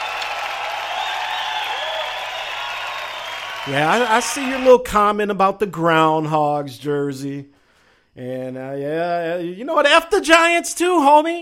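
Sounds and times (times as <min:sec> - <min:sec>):
crowd applauding: 0:00.0 - 0:04.8
speech: 0:03.6 - 0:07.5, 0:08.2 - 0:11.4.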